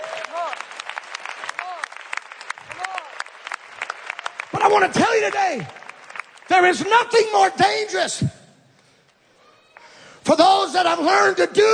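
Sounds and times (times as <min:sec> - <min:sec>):
crowd clapping: 0:00.0 - 0:07.6
speech: 0:04.7 - 0:05.8, 0:06.5 - 0:08.4, 0:10.3 - 0:11.7.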